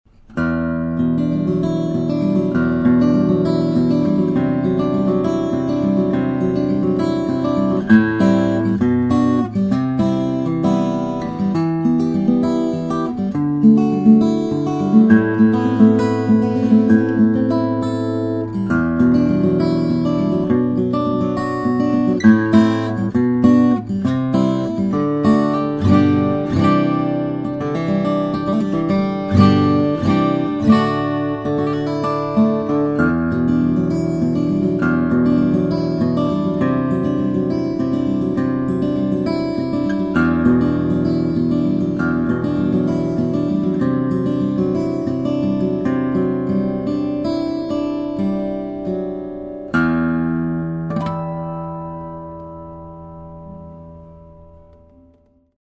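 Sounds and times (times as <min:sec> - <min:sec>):
flattop steel string guitars: 0:00.3 - 0:55.3.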